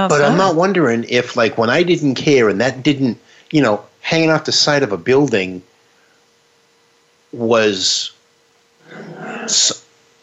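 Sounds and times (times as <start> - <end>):
speech: 0.0 - 5.7, 7.3 - 8.1, 8.9 - 9.8
dog growling: 8.8 - 9.6.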